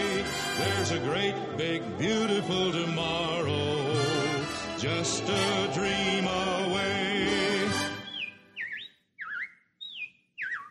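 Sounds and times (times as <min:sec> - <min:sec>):
speech: 0:00.6 - 0:04.2, 0:04.8 - 0:07.9
robins chirping: 0:08.0 - 0:10.6.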